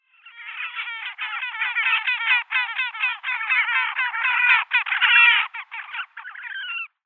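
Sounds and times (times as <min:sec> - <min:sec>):
horned grebe Podiceps auritus: 0:00.0 - 0:07.0.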